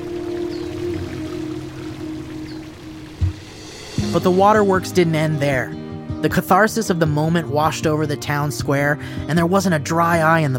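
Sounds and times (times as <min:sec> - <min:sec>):
fountain water cascading into bubbling pool: 0:00.0 - 0:04.1
speech: 0:04.1 - 0:10.5.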